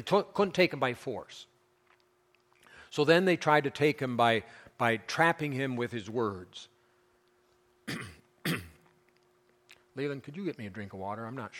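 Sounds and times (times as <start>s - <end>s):
speech: 0.0s - 1.5s, 2.9s - 6.7s, 7.9s - 8.6s, 10.0s - 11.5s
person clearing throat with something caught in it: 7.8s - 9.0s.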